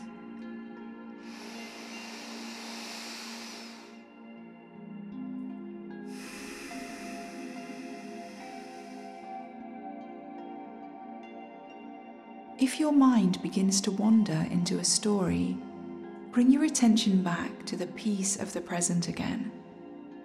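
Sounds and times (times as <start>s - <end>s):
soft steady ambient music bed: 0.0s - 20.2s
long airy breath drawn in and released: 1.2s - 4.4s, 6.0s - 9.8s
speech: 12.6s - 15.7s, 16.4s - 19.6s.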